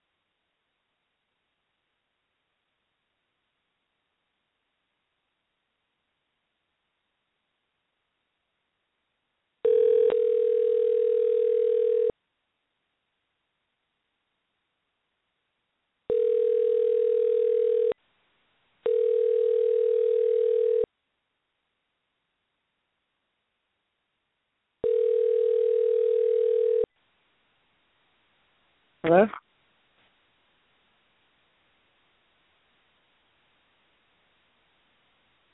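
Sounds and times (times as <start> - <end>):
telephone dial tone: 9.6 - 12.1, 16.1 - 18.0, 18.8 - 20.9, 24.8 - 26.9
speech: 29.1 - 29.4.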